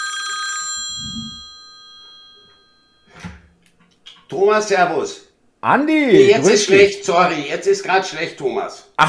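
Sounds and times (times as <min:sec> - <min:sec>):
telephone ringing with a bright electronic chime: 0:00.0 - 0:03.2
speech: 0:04.3 - 0:09.0.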